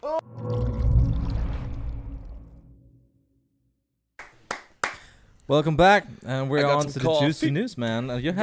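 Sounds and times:
loud rich whooshing swell that rumbles: 0.4s - 3.6s
speech: 5.5s - 8.4s.

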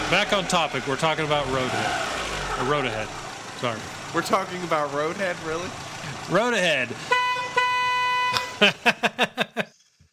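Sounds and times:
speech: 0.1s - 7.2s, 8.6s - 9.7s
car horn honking in a jingle: 7.0s - 8.6s
laughter: 8.3s - 9.8s.

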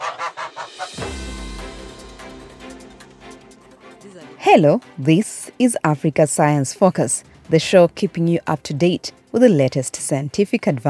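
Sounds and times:
goose honking in a poultry pen in the rain: 0.0s - 1.0s
speech: 4.4s - 10.8s.

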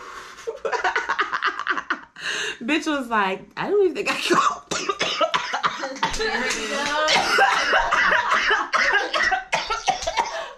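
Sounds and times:
bursts of laughter: 0.4s - 2.1s, 5.6s - 10.5s
speech: 2.6s - 4.6s, 6.2s - 8.2s
raspy coughing fit: 4.2s - 10.5s.

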